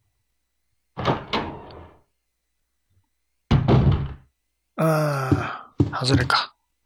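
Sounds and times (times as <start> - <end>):
heavy thunks of a door opening in a video game: 1.0 - 2.0, 3.5 - 4.3
speech: 4.8 - 5.4, 6.0 - 6.5.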